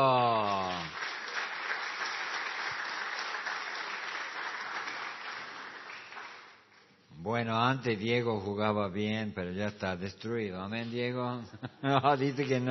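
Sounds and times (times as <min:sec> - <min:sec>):
person calling out: 0:00.0 - 0:00.9
crowd applauding: 0:00.0 - 0:06.8
speech: 0:07.4 - 0:12.6
laughter: 0:11.5 - 0:12.6.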